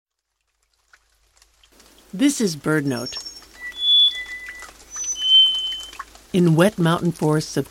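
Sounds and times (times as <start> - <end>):
faint dripping: 0.1 - 7.7
speech: 2.1 - 3.3, 6.3 - 7.7
black-faced solitaire singing in wet mountain forest of Costa Rica: 3.0 - 6.1.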